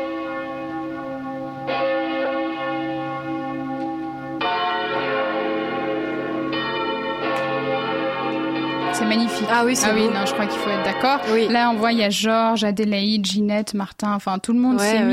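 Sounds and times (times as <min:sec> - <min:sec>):
several church bells ringing in a full overlapping peal: 0:00.0 - 0:12.7
speech: 0:09.0 - 0:15.1.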